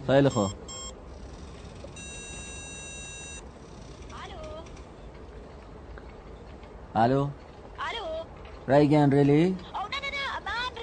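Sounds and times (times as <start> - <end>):
speech: 0.1 - 0.8, 7.0 - 7.4, 8.7 - 9.7
phone line ringing tone of call to a mobile phone: 0.3 - 1.0, 2.0 - 3.4.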